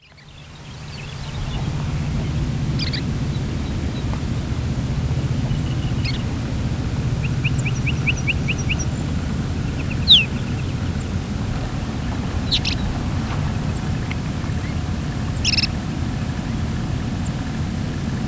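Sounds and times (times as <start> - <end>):
chestnut-collared longspur calls: 0.0 - 4.1, 5.3 - 15.8
constant low rumble: 0.0 - 18.2.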